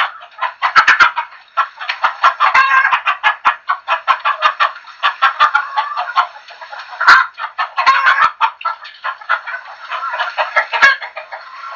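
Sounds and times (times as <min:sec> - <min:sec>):
chickens clucking: 0:00.0 - 0:11.7.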